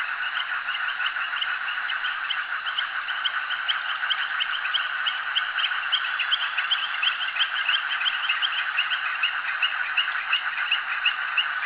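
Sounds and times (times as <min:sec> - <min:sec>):
frog chorus at a jetty: 0:00.0 - 0:11.6.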